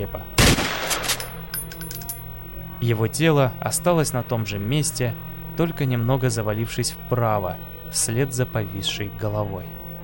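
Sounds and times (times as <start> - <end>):
speech: 0.0 - 0.4, 2.8 - 9.8
loud shotgun blast: 0.4 - 1.5.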